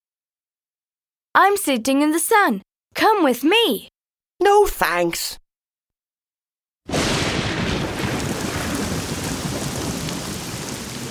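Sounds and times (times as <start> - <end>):
speech: 1.4 - 5.4
heavy rain: 6.9 - 11.0.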